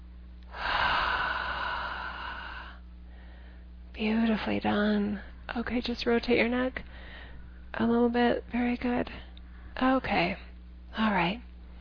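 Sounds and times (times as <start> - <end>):
deep breath inhale during a guided relaxation: 0.5 - 3.7, 6.9 - 7.6
speech: 4.0 - 7.1, 7.7 - 11.5.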